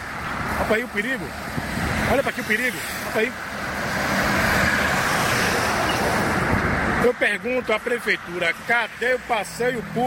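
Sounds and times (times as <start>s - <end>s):
car passing on a road: 0.0s - 10.0s
speech: 0.7s - 1.4s, 2.1s - 3.5s, 7.0s - 10.0s.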